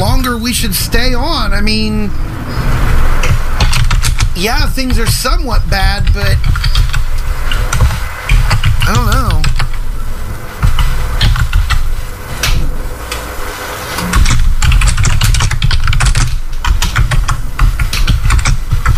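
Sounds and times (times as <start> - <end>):
constant low rumble: 0.0 - 18.9
speech: 0.5 - 2.8, 4.4 - 6.8, 8.9 - 9.4
typing on a computer keyboard: 3.2 - 5.2, 6.0 - 9.8, 10.7 - 11.8, 14.0 - 18.9.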